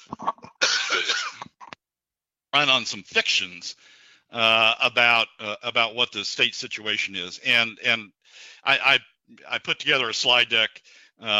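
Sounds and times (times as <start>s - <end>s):
person coughing: 0.4s - 1.5s
speech: 2.5s - 11.3s.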